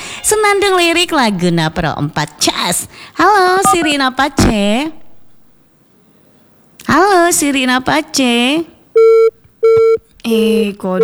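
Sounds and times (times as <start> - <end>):
speech: 0.2 - 5.0, 6.9 - 9.3, 10.2 - 11.0
telephone disconnect tone as a call drops on a weak network: 9.0 - 10.0.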